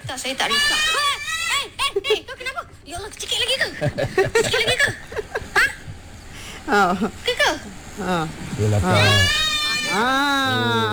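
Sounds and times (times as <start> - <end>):
speech: 0.1 - 5.0, 6.7 - 10.9
laughter: 3.6 - 6.0
young goat bleating: 9.0 - 10.0.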